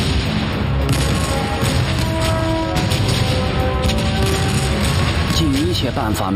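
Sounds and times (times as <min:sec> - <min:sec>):
76 mm tank gun firing: 0:00.0 - 0:06.3.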